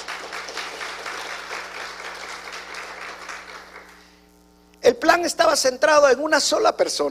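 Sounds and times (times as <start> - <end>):
crowd applauding: 0.0 - 4.0
faint steady hum: 0.0 - 7.0
speech: 4.9 - 7.0.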